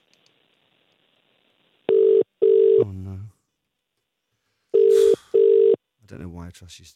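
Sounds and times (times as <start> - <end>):
telephone ringback tone: 1.9 - 2.8, 4.8 - 5.8
speech: 6.1 - 6.9.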